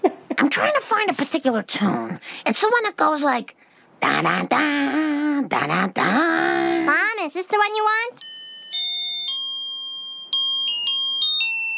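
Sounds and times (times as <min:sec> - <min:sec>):
speech: 0:00.4 - 0:08.4
electronic musical doorbell chime playing a melody: 0:08.2 - 0:11.7.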